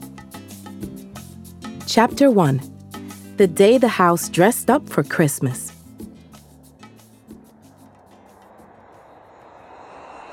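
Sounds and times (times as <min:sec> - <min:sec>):
speech: 0:01.9 - 0:02.7, 0:03.4 - 0:05.7
airplane engine roaring during descent: 0:07.0 - 0:10.3.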